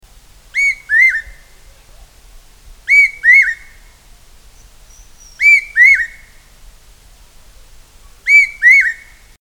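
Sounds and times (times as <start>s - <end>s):
large hawk-cuckoo calling loud paired whistled notes: 0.6s - 1.4s, 2.9s - 3.7s, 4.9s - 6.3s, 8.3s - 9.2s.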